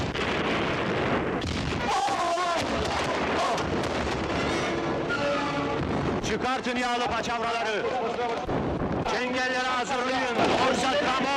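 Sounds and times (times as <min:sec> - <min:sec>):
cannon fire from a ship in battle: 0:00.0 - 0:07.4, 0:10.2 - 0:11.3
people shouting in battle: 0:01.8 - 0:03.7
speech: 0:06.3 - 0:11.3.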